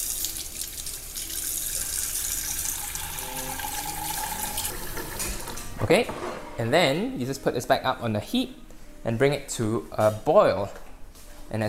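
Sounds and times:
tap water pouring into a pan sticky with caramel: 0.0s - 5.5s
speech: 5.8s - 10.8s, 11.5s - 11.6s.

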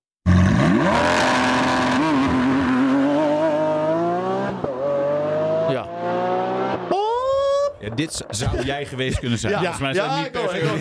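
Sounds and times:
Lamborghini Aventador SVJ 6.5-litre V12 engine revving: 0.3s - 7.0s
speech: 7.9s - 10.8s
laughter: 8.3s - 10.8s.

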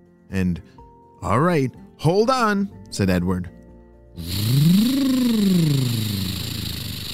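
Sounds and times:
speech: 0.3s - 3.6s, 4.2s - 4.7s
monster truck engine revving: 4.2s - 7.1s.

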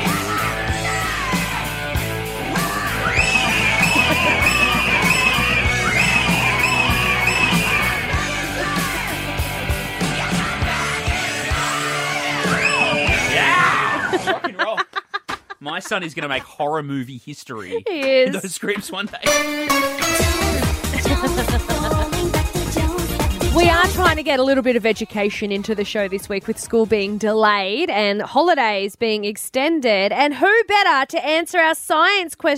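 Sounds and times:
shrill screaming and yelling: 0.0s - 9.3s, 10.2s - 14.3s
loud dense hard rock music with pounding drums and guitars: 0.0s - 14.4s, 19.2s - 24.2s
laughter: 3.2s - 7.8s, 13.2s - 16.8s, 17.5s - 19.3s, 20.4s - 22.5s
speech: 15.9s - 22.0s, 23.6s - 32.5s.

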